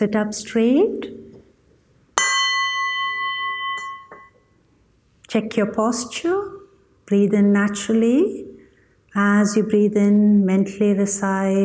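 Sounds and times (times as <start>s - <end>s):
speech: 0.0s - 1.2s, 5.3s - 6.5s, 7.1s - 8.5s, 9.2s - 11.6s
meditation gong struck: 2.2s - 4.3s.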